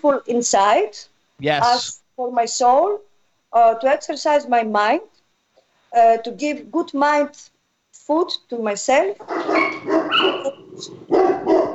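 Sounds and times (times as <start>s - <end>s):
speech: 0.0s - 5.1s, 5.9s - 7.5s, 8.1s - 9.6s, 10.2s - 11.6s
dog barking: 9.2s - 11.7s.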